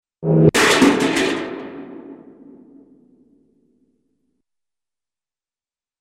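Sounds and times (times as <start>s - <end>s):
cartoon metallic object falling: 0.2s - 3.0s.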